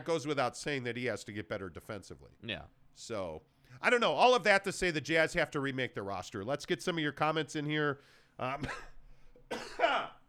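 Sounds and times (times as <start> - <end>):
speech: 0.0 - 8.9
person coughing harshly: 8.5 - 10.2.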